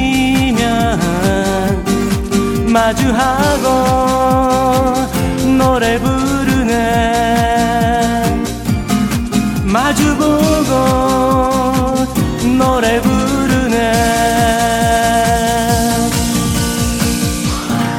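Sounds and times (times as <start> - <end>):
Korean pop song with sung vocals, beat and backing band: 0.0 - 17.8.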